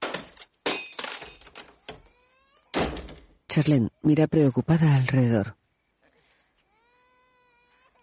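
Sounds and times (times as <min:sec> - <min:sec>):
figurine being thrown and smashing: 0:00.0 - 0:01.8, 0:02.7 - 0:03.4
shards of figurine tinkling as they settle: 0:00.6 - 0:01.6
speech: 0:03.6 - 0:05.6.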